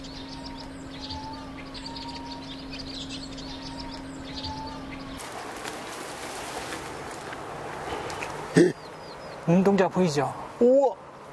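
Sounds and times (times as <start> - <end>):
vinous-throated parrotbill calling near reed nest: 0.0 - 5.8, 7.8 - 10.8
steady outdoor hum: 0.0 - 11.3
speech: 9.5 - 11.0.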